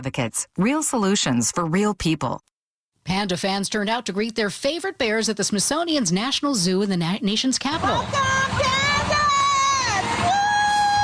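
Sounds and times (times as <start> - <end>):
speech: 0.0 - 2.5, 3.1 - 8.8
crowd cheering outdoors outside a zoo: 7.8 - 11.0
person whooping: 9.6 - 11.0.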